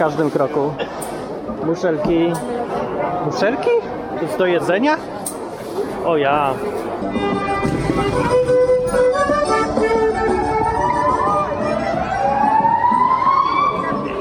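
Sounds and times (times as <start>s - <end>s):
speech: 0.0s - 2.6s, 3.2s - 5.2s, 6.0s - 8.6s
busy street noise: 0.0s - 14.2s
police car sirens wailing: 10.7s - 14.2s.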